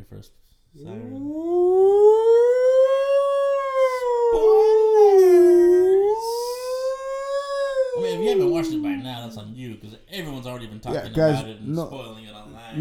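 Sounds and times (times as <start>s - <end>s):
speech: 0.1s - 1.6s, 9.1s - 12.7s
wailing siren sound effect used as a spoiler alert: 0.8s - 9.4s.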